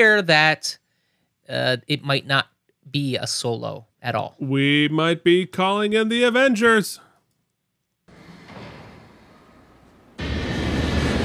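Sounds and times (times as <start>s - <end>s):
speech: 0.0s - 0.8s, 1.5s - 7.0s
airplane engine roar: 10.2s - 11.2s.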